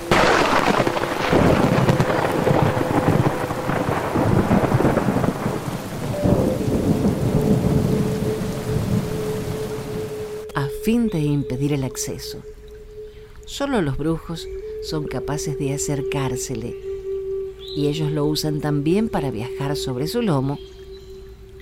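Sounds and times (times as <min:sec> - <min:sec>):
rumbling thunder: 0:00.0 - 0:10.5
steady heavy rain: 0:00.0 - 0:10.5
speech: 0:10.8 - 0:12.6, 0:13.5 - 0:16.9, 0:17.8 - 0:20.8.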